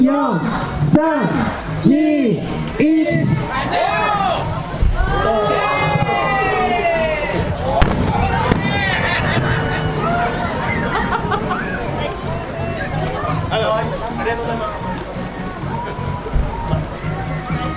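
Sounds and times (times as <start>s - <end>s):
excited voices and shouts: 0.0s - 17.7s
speech: 0.1s - 3.9s
crowd cheering outdoors: 3.3s - 17.7s
laughter: 5.2s - 17.7s
fireworks bangs: 7.6s - 11.4s.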